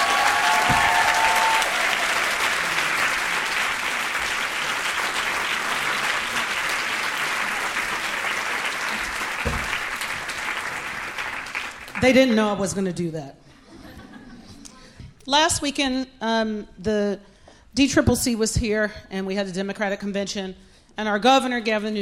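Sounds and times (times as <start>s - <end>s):
sustained applause from a sizable audience: 0.0s - 12.2s
speech: 12.0s - 13.4s, 15.3s - 22.0s
laughter: 13.6s - 14.9s.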